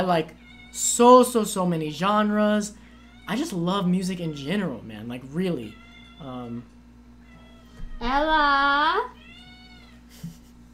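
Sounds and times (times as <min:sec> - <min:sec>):
speech: 0:00.0 - 0:06.7, 0:08.0 - 0:09.2
steady low hum: 0:00.0 - 0:10.7
cat meowing loudly: 0:00.4 - 0:00.9, 0:02.9 - 0:03.4, 0:05.6 - 0:06.6, 0:07.2 - 0:10.0.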